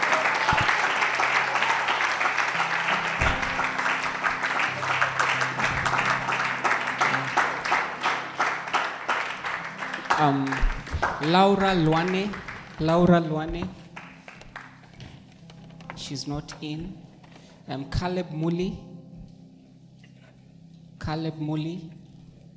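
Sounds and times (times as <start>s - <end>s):
crowd applauding for certificate recipients: 0.0s - 15.1s
speech: 10.2s - 13.8s, 16.1s - 17.0s, 17.7s - 18.9s, 21.1s - 22.0s.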